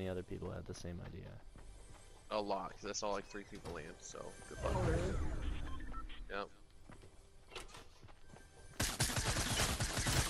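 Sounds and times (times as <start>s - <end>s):
speech: 0.0s - 1.6s, 2.3s - 5.6s, 6.3s - 6.6s
suppressed gunfire in a video game: 8.8s - 10.2s.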